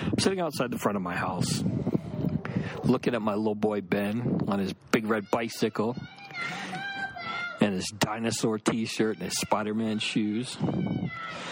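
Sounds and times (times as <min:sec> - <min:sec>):
low rumble of activity: 0:00.0 - 0:11.5
speech: 0:00.2 - 0:01.9, 0:02.5 - 0:06.9, 0:07.6 - 0:11.5
young girl screaming: 0:05.2 - 0:07.7, 0:09.0 - 0:11.5.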